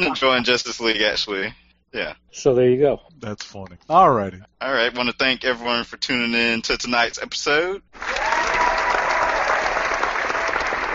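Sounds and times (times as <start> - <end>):
speech: 0.0 - 8.2
crowd applauding: 8.0 - 10.9.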